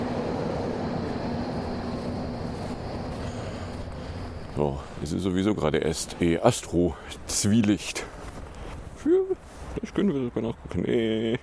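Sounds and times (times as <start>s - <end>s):
low hum: 0.0s - 7.4s
subway train running: 0.0s - 8.1s
faint tonal whine: 0.0s - 9.4s
speech: 4.6s - 8.2s, 9.8s - 11.4s.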